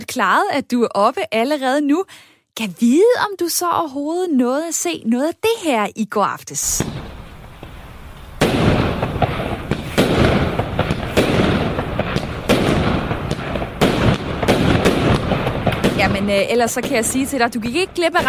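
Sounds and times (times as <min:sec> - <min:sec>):
speech: 0:00.1 - 0:07.0, 0:16.1 - 0:18.2
fireworks exploding in a dense barrage: 0:06.6 - 0:18.2.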